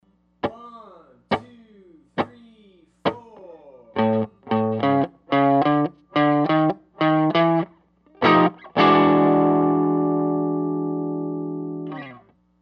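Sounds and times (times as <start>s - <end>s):
blues turnaround in A: 4.0s - 12.2s.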